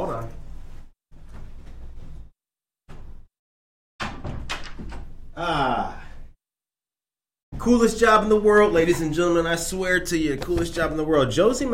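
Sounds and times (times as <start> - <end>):
door pushed shut: 4.0 - 5.4
speech: 5.4 - 6.0, 7.6 - 11.7.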